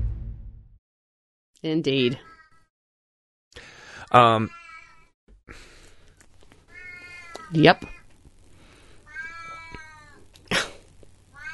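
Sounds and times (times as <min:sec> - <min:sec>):
speech: 0:01.7 - 0:02.3, 0:04.1 - 0:04.6, 0:07.5 - 0:07.9
cat meowing: 0:04.4 - 0:05.1, 0:06.7 - 0:08.1, 0:09.1 - 0:10.3, 0:11.3 - 0:11.5.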